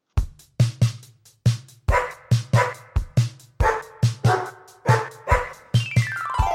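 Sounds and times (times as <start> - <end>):
dog barking: 1.9 - 3.0, 3.6 - 5.7
tonal musical sounds: 5.8 - 6.5.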